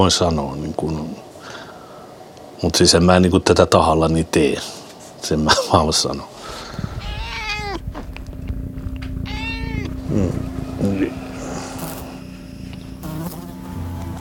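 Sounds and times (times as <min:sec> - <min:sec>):
speech: 0:00.0 - 0:01.2, 0:02.6 - 0:06.9, 0:10.1 - 0:11.2
rising-and-falling cries: 0:06.5 - 0:08.4, 0:09.0 - 0:12.2
insect buzzing close to the microphone: 0:06.5 - 0:14.1.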